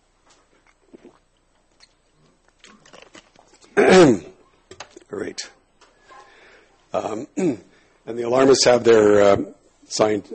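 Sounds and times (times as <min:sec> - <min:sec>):
person clearing throat with a guttural rasp: 0:03.7 - 0:04.4, 0:07.1 - 0:07.7
speech: 0:07.1 - 0:10.3.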